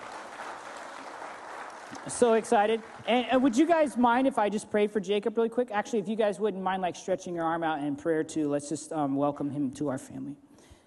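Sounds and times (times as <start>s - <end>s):
audience clapping: 0.0s - 3.9s
speech: 2.0s - 10.4s.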